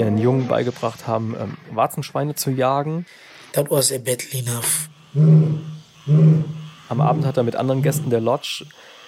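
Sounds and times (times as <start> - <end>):
speech: 0.2 - 8.9
lion roaring: 5.1 - 7.4.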